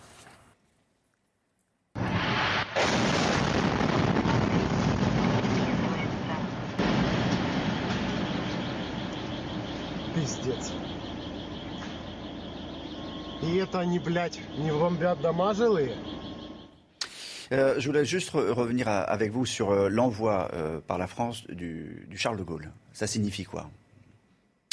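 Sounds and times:
bomb strike explosion blast and rumble: 2.0s - 13.4s
speech: 10.3s - 10.9s, 13.4s - 16.2s, 17.5s - 23.8s.

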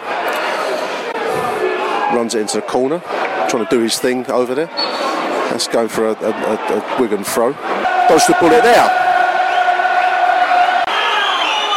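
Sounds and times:
crowd roar: 0.0s - 3.9s, 6.2s - 11.7s
speech: 2.1s - 9.0s
large football crowd whistling: 4.8s - 5.2s, 7.8s - 11.7s.

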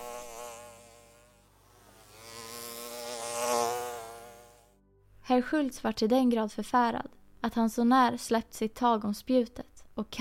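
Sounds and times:
dor beetle or hornet buzzing in flight over a meadow at dusk: 0.0s - 4.8s
speech: 5.3s - 10.1s.

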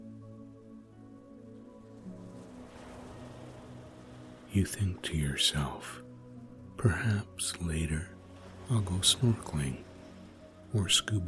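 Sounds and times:
soft ocean surf: 0.0s - 11.2s
steady low ambient drone of sustained musical tones: 0.0s - 11.2s
speech: 4.6s - 6.0s, 6.8s - 9.9s, 10.7s - 11.2s.

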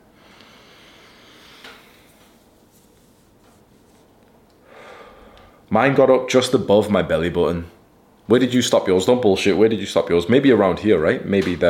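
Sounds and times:
deep breathing in through the nose: 0.2s - 2.2s, 4.6s - 5.6s
speech: 5.7s - 11.6s.

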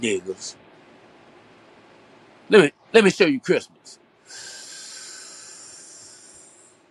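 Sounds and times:
speech: 0.0s - 0.6s, 2.5s - 4.5s
deep breath in through the nose: 4.3s - 6.8s.

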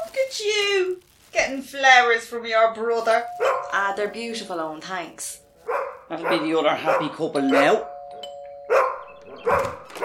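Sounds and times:
speech: 0.3s - 7.9s
doorbell chiming: 3.0s - 5.4s, 7.1s - 9.5s
dog barking: 3.3s - 3.9s, 5.6s - 7.9s, 8.7s - 10.0s.

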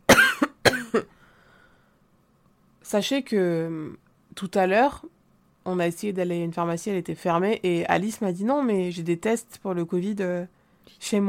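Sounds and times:
person coughing forcefully: 0.1s - 1.1s
speech: 0.9s - 1.2s, 2.9s - 11.2s.

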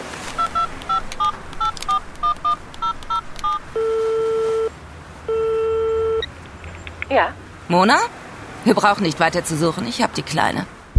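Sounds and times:
mobile phone keypad tones: 0.4s - 4.7s, 5.3s - 6.4s
speech: 7.2s - 10.8s.

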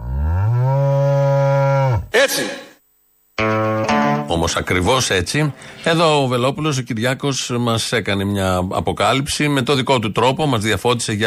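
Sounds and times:
cow mooing: 0.0s - 2.1s
speech: 2.2s - 2.6s, 4.4s - 11.2s.

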